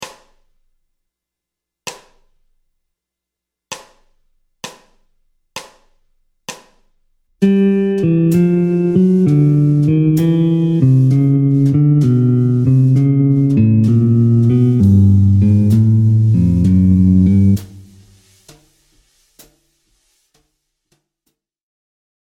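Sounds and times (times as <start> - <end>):
jazz guitar playing descending bebop scale in G Lydian: 7.4 - 18.0.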